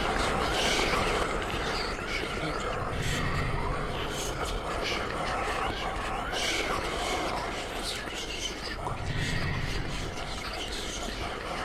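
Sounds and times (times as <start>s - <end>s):
whispers: 0.0s - 11.6s.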